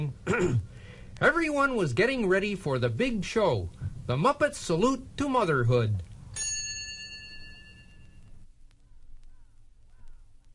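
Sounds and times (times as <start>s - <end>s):
speech: 0.0s - 6.1s
bright bell chime signaling page turn in a read-along story: 6.4s - 8.2s.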